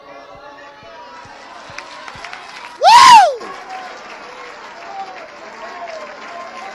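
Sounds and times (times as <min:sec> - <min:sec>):
crowd clapping and cheering: 0:00.3 - 0:06.7
loud whooping shout: 0:02.8 - 0:03.5.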